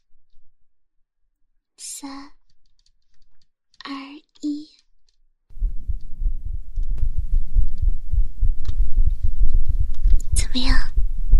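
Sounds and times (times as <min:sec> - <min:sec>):
heartbeat heard with a head resting on a lap: 0:05.5 - 0:11.3.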